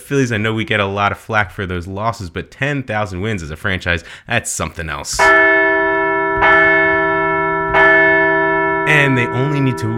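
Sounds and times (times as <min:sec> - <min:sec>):
speech: 0:00.1 - 0:05.6, 0:08.9 - 0:09.9
large bell ringing: 0:05.2 - 0:09.9.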